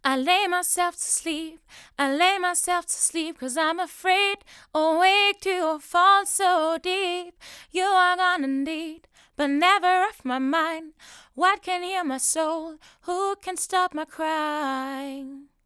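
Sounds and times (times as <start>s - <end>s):
vocals into a Neumann TLM102 microphone: 0.0s - 15.6s.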